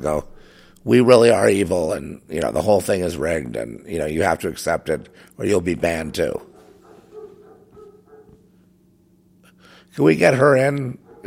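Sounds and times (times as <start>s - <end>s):
speech: 0.0s - 6.5s, 10.0s - 11.2s
dog barking and yelping: 6.4s - 8.5s, 11.0s - 11.2s.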